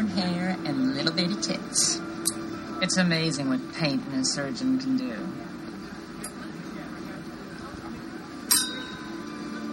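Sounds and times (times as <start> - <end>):
speech: 0.2 - 5.6
glasses clinking in a toast: 8.5 - 9.6.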